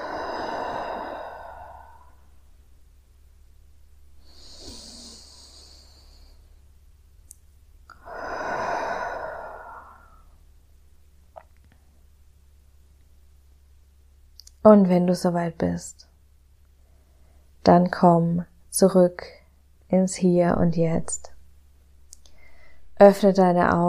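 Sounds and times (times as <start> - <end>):
deep breaths in through the nose and out through the mouth during guided relaxation meditation: 0.0 - 2.4, 4.2 - 6.5, 7.9 - 10.4
speech: 14.6 - 16.1, 17.7 - 21.3, 23.0 - 23.8.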